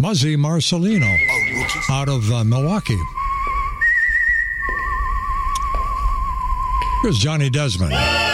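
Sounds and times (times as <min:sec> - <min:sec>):
speech: 0:00.0 - 0:03.2, 0:07.0 - 0:08.2
person whistling a slow melody with vibrato: 0:01.0 - 0:07.2.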